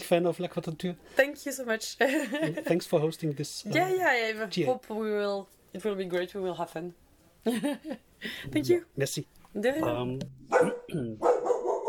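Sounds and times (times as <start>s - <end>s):
speech: 0.1s - 11.8s
dog barking: 10.5s - 11.8s.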